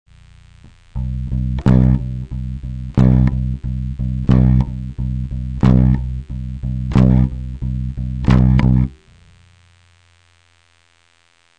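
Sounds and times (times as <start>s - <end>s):
bass accent played with the right hand: 0.6s - 9.2s.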